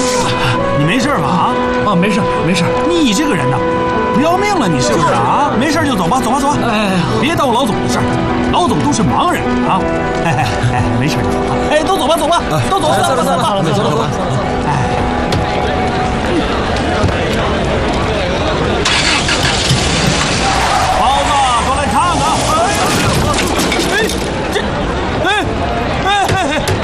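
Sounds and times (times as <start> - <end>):
crowd of voices chattering: 0.0 - 26.8
speech: 1.1 - 15.2
laughter: 4.7 - 5.6, 10.1 - 15.2, 20.5 - 26.8
car engine starting and revving as vehicle pulls away: 18.7 - 24.4.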